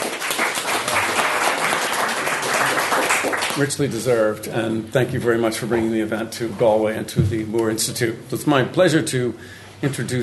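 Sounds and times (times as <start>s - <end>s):
audience applause: 0.0s - 3.7s
speech: 3.6s - 10.2s.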